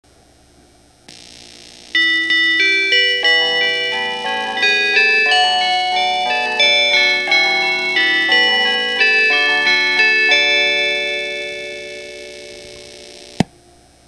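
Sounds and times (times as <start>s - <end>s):
KiHa 40 train chime in East Japan: 2.0s - 13.0s.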